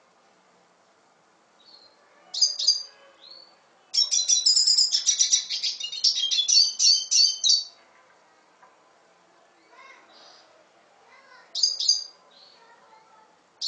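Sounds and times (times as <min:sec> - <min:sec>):
red siskin singing: 0:01.6 - 0:08.1, 0:09.6 - 0:13.6.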